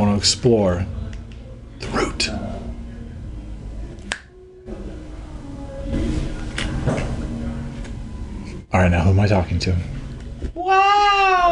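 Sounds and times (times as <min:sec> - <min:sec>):
low hum: 0:00.0 - 0:11.5
speech: 0:00.2 - 0:01.0, 0:01.8 - 0:02.6, 0:08.7 - 0:10.0, 0:10.6 - 0:11.5
finger snap: 0:04.0 - 0:04.3.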